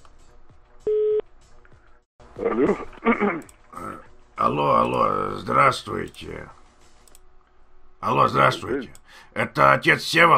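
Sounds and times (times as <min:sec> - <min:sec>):
telephone line beep while placing a call: 0:00.9 - 0:01.2
speech: 0:02.6 - 0:02.9, 0:04.6 - 0:06.6, 0:08.0 - 0:10.3.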